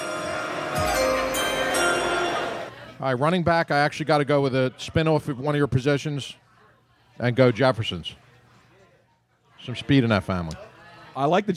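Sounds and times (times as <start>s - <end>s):
bell ringing with sustained shimmering metallic tone: 0.0s - 2.7s
speech: 3.0s - 6.4s, 7.2s - 8.2s, 9.6s - 11.5s.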